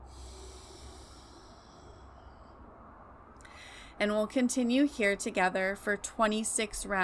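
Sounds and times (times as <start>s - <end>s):
faint steady breath hiss from sitali breathing through rolled tongue, out through nose: 0.0s - 2.5s
speech: 4.0s - 7.0s.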